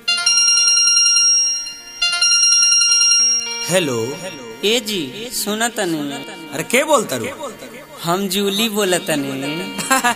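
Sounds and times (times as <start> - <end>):
mobile phone ringing after a call is placed: 0.0 - 6.6
speech: 3.7 - 10.1.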